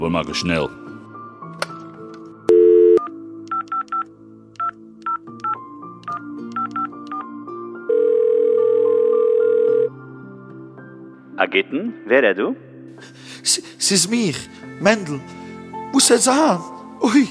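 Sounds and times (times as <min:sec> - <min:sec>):
speech: 0:00.0 - 0:00.8, 0:11.5 - 0:12.7, 0:13.4 - 0:17.3
long unbroken telephone tone: 0:02.5 - 0:03.1, 0:07.9 - 0:10.0
touch-tone beeps as a number is keyed in: 0:02.5 - 0:04.0.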